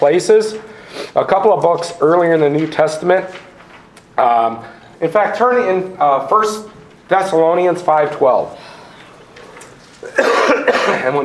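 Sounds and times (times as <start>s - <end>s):
speech: 0.0s - 3.5s, 4.2s - 8.7s, 10.1s - 11.2s
person coughing like a throat being cleared: 10.0s - 11.2s.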